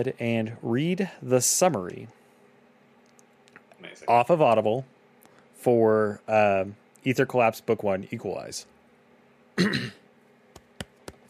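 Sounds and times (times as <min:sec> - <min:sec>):
speech: 0:00.0 - 0:02.2, 0:03.8 - 0:04.9, 0:05.6 - 0:08.7, 0:09.6 - 0:10.0
rough throat clearing: 0:09.6 - 0:10.0.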